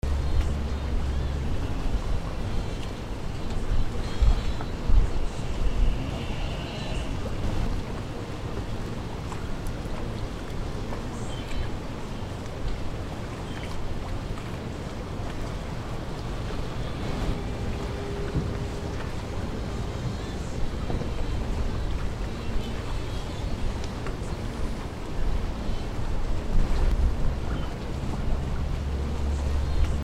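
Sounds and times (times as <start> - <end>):
harbor docks ambience: 0.0 - 30.0.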